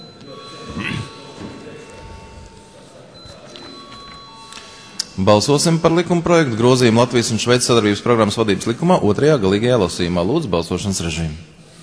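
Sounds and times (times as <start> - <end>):
parliament voting bell ringing in a steady electric tone: 0.0 - 8.8
low murmur of voices in a large room: 0.0 - 11.8
speech: 5.2 - 11.6.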